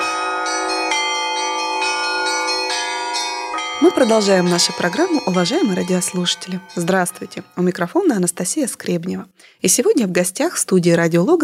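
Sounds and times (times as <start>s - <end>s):
church bells ringing: 0.0s - 8.4s
speech: 3.8s - 11.4s.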